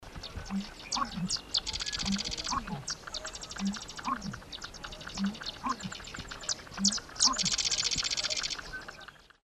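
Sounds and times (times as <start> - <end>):
Crex corncrake calling: 0.2 - 9.4.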